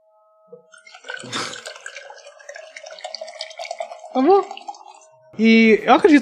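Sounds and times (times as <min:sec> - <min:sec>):
speech: 0:00.5 - 0:01.6, 0:04.2 - 0:04.6, 0:05.4 - 0:06.2
water pouring or running steadily: 0:00.7 - 0:05.2.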